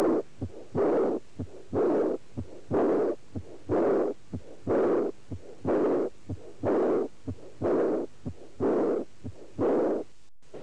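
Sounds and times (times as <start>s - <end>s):
aortic valve insufficiency heart murmur: 0.0s - 10.6s.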